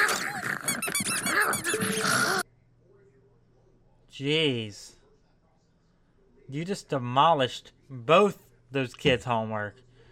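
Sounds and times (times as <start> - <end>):
dogs growling: 0.0 - 2.4
squeaky toy squealing while dogs chew it: 0.0 - 2.4
speech: 4.2 - 5.0, 6.5 - 9.8.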